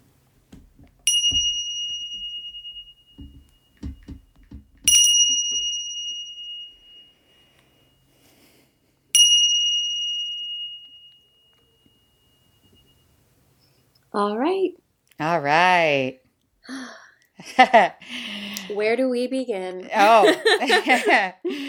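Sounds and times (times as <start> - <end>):
meditation bell ringing: 1.0 - 8.3, 9.1 - 13.8
speech: 14.2 - 21.6
laughter: 20.0 - 21.6.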